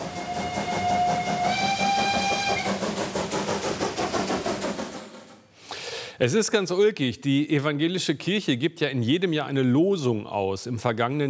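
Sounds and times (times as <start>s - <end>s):
shrill steam locomotive whistle: 0.0s - 3.1s
coal-fired museum-railway steam locomotive chugging: 0.0s - 6.0s
speech: 6.2s - 11.2s.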